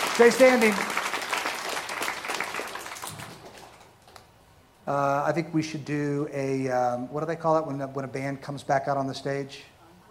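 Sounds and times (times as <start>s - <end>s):
audience clapping for standing dads: 0.0s - 4.3s
speech: 0.2s - 1.0s, 4.9s - 9.7s.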